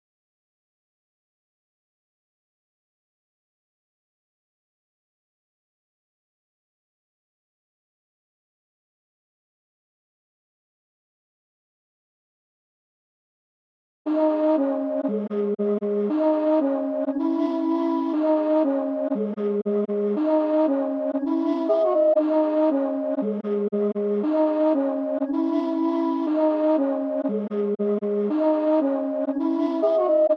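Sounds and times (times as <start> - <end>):
118 BPM C# minor flute chops melody loop for trap: 14.1 - 30.3.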